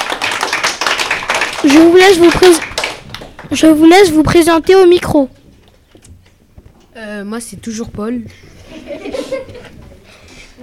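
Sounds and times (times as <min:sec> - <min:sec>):
audience applauding at a school quiz game: 0:00.0 - 0:03.7
speech: 0:01.6 - 0:02.7, 0:03.5 - 0:05.4, 0:07.0 - 0:09.0
laughter: 0:08.5 - 0:10.3.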